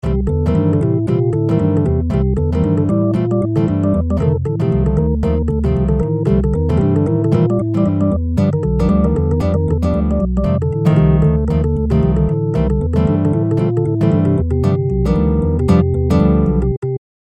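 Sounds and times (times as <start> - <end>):
MIDI ditty: 0.0 - 16.8.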